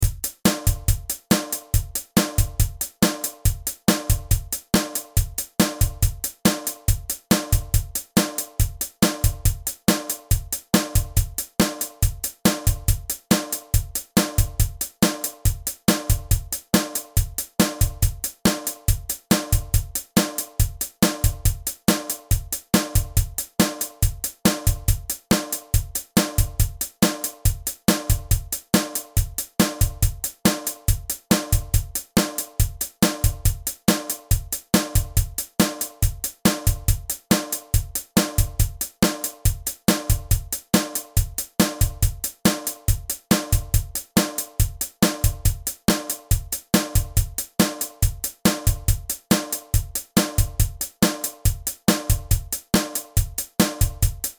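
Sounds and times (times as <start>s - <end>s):
drum track at 140 bpm: 0.0s - 54.3s.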